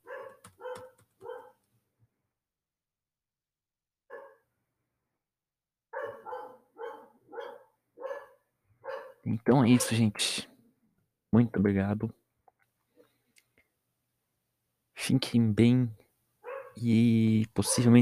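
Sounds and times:
dog barking: 0:00.0 - 0:01.6, 0:04.1 - 0:04.5, 0:05.9 - 0:10.0, 0:16.4 - 0:16.8, 0:17.6 - 0:18.0
speech: 0:09.2 - 0:10.5, 0:11.3 - 0:12.2, 0:15.1 - 0:16.0, 0:16.8 - 0:18.0.

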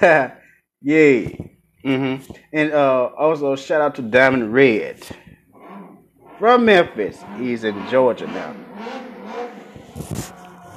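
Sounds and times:
speech: 0:00.0 - 0:05.2, 0:06.4 - 0:09.1, 0:10.0 - 0:10.4
motorcycle engine revving outside at night: 0:05.0 - 0:10.7.

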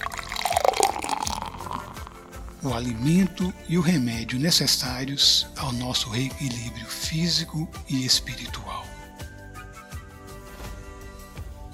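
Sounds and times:
water pouring into a glass: 0:00.0 - 0:02.7
speech: 0:02.6 - 0:08.8.

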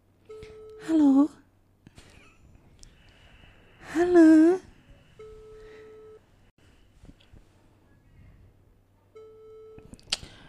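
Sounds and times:
phone ringback tone: 0:00.3 - 0:00.9, 0:05.2 - 0:06.2, 0:09.2 - 0:09.8.

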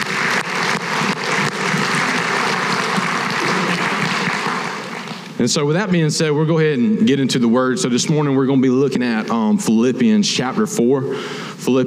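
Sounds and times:
large crowd applauding: 0:00.0 - 0:05.4
speech: 0:05.4 - 0:11.8.

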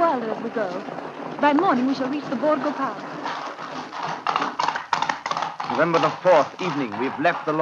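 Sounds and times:
continuous rumbling: 0:00.0 - 0:07.5
horse hooves clip-clopping at a walking pace: 0:00.0 - 0:07.5
speech: 0:00.4 - 0:03.4, 0:05.8 - 0:07.5.

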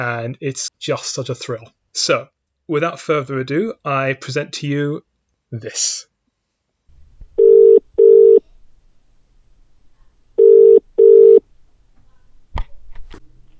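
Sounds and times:
speech: 0:00.0 - 0:06.1
telephone ringing with a loud double-burst ring: 0:07.4 - 0:08.5, 0:10.4 - 0:11.5.

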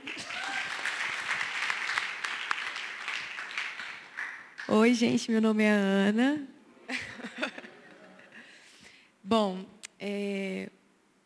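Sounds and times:
audience applause: 0:00.0 - 0:04.7
speech: 0:04.7 - 0:06.5, 0:09.3 - 0:10.8
laughter: 0:06.9 - 0:08.5.

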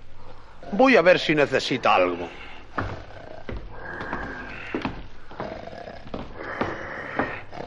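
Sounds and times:
speech: 0:00.7 - 0:02.4
loud rasping snoring of a sleeping wolf: 0:02.3 - 0:07.6.

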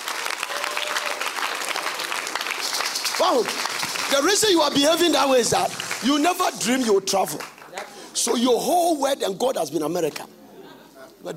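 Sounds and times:
large crowd applauding: 0:00.0 - 0:07.9
speech: 0:03.2 - 0:07.5, 0:08.2 - 0:10.4.

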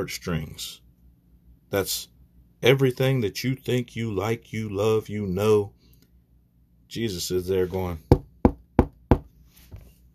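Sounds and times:
speech: 0:00.0 - 0:00.8, 0:01.7 - 0:05.8, 0:06.9 - 0:08.1
firm knocks on a door: 0:08.1 - 0:09.3.

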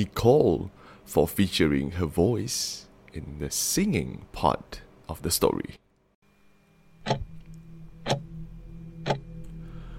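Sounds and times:
speech: 0:00.0 - 0:05.8
faint low hum in an office: 0:00.0 - 0:09.9
sunflower-shaped wall clock ticking in an office: 0:07.0 - 0:07.3, 0:08.0 - 0:08.2, 0:09.0 - 0:09.2.

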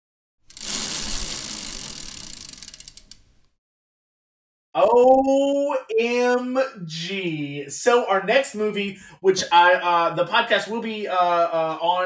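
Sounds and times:
prize wheel spinning with ratcheting clicks: 0:00.5 - 0:03.3
speech: 0:04.8 - 0:12.0.

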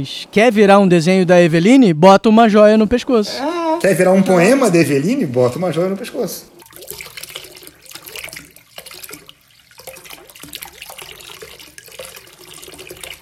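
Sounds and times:
speech: 0:00.0 - 0:07.0
shower water running: 0:03.4 - 0:13.1.

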